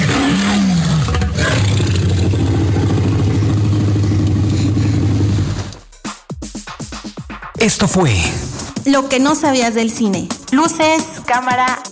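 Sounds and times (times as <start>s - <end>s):
Tyrannosaurus rex roar made from tiger, alligator and baby elephant sounds: 0.0s - 5.8s
speech: 7.6s - 11.8s.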